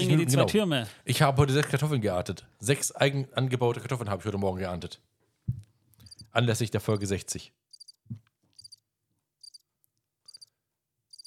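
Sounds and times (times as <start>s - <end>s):
speech: 0.1s - 5.6s, 6.3s - 8.2s
cricket chirping: 7.7s - 8.0s, 8.6s - 8.8s, 9.4s - 9.6s, 10.3s - 10.5s.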